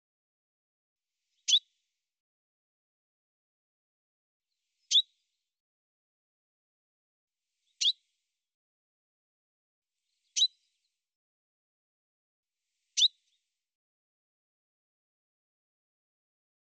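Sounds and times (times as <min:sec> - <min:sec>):
bird chirping: 0:01.3 - 0:01.8, 0:04.8 - 0:05.4, 0:07.6 - 0:08.1, 0:10.0 - 0:10.9, 0:12.9 - 0:13.5.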